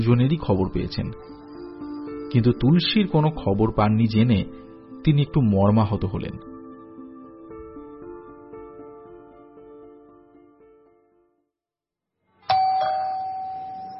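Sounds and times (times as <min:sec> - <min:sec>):
speech: 0:00.0 - 0:01.4, 0:02.3 - 0:06.5
doorbell ringing in the outer room of a house: 0:12.4 - 0:13.9.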